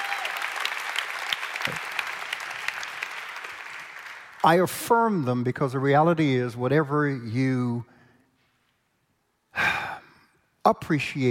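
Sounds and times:
audience applause: 0.0s - 4.4s
speech: 4.4s - 7.9s, 10.7s - 11.2s.

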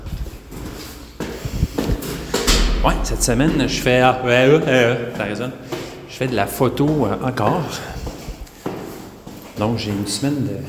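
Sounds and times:
door opening: 2.2s - 4.1s
speech: 2.8s - 7.9s, 9.6s - 10.6s.

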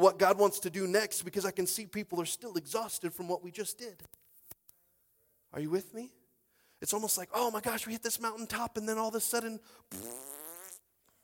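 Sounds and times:
speech: 0.0s - 4.2s, 5.5s - 6.2s, 6.8s - 10.4s
voice imitating a fart: 9.9s - 10.8s.

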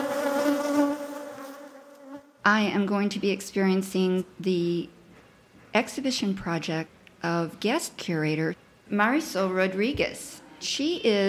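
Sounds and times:
bees buzzing: 0.0s - 2.3s
speech: 2.5s - 5.0s, 5.8s - 11.2s.

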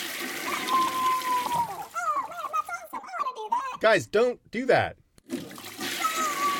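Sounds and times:
toilet flushing: 0.0s - 2.0s, 5.2s - 6.5s
thin whistling tone: 0.6s - 1.7s
speech: 3.8s - 5.4s.

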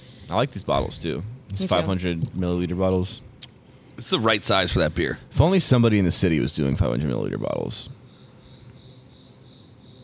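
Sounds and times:
speech: 0.3s - 3.3s, 4.0s - 8.0s
cricket chirping outdoors: 7.4s - 10.0s.

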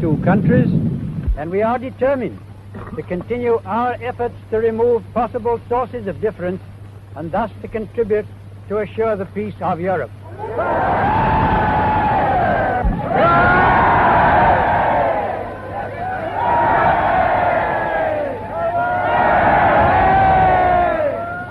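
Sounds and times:
speech: 0.0s - 11.2s
large crowd cheering and shouting around a car: 10.2s - 21.4s.

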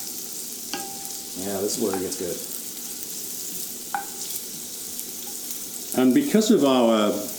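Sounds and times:
food frying in a pan: 0.0s - 7.3s
metallic clink: 0.7s - 1.3s
speech: 1.4s - 2.5s, 6.0s - 7.3s.

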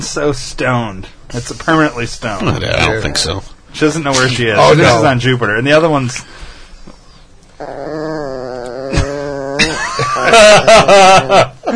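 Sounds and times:
speech: 0.0s - 6.5s, 10.2s - 11.7s
chihuahua yipping snarls: 7.6s - 9.6s
chihuahua growling at another dog: 7.6s - 10.5s
laughter: 8.9s - 11.7s.

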